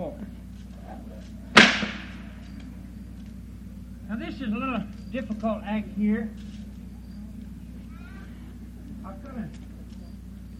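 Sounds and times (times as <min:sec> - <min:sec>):
low steady hum: 0:00.0 - 0:10.5
handmade leather whip cracking: 0:01.6 - 0:02.3
speech: 0:04.1 - 0:06.6.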